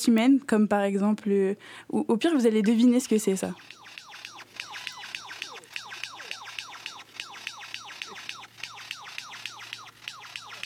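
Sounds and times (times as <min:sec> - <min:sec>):
speech: 0:00.0 - 0:03.8
faint hum: 0:00.0 - 0:10.6
bird mimicking toy laser gun sounds: 0:03.4 - 0:10.6.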